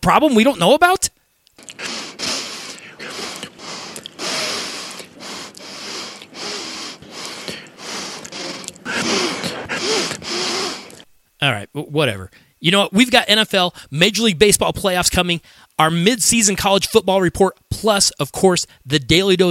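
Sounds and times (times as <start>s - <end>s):
speech: 0.0s - 1.2s, 11.4s - 19.5s
breathy snorts: 1.6s - 11.1s
repeated nasal sniffing: 1.6s - 11.1s.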